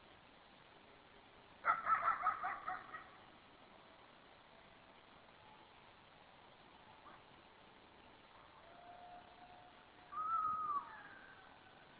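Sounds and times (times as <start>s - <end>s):
long faint steady tone: 0.0s - 11.9s
coyote howl: 1.6s - 3.1s, 8.5s - 11.8s
coyote yips: 1.6s - 3.1s, 10.1s - 11.3s.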